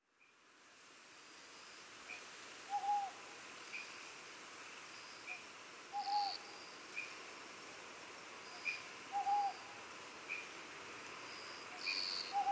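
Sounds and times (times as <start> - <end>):
steady hiss: 0.0 - 12.4
owl hooting on Iriomote Island Okinawa Japan: 2.7 - 3.2, 5.3 - 6.4, 8.6 - 9.7, 11.9 - 12.4.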